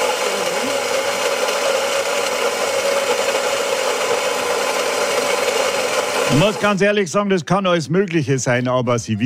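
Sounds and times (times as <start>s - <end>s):
coffee machine built-in grinder whirring: 0.0s - 7.0s
speech: 6.3s - 9.2s.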